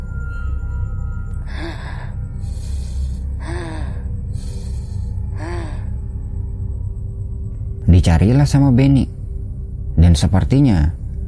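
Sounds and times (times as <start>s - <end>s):
steady low rumble: 0.0s - 11.2s
heavy raspy sniffing breaths inside a tent: 1.8s - 5.9s
speech: 8.0s - 9.2s, 10.2s - 11.0s.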